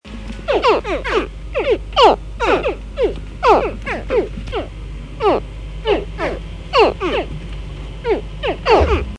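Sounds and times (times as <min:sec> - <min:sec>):
baby crocodiles chirping: 0:00.5 - 0:07.3, 0:08.0 - 0:09.1
low rumble: 0:08.7 - 0:09.1.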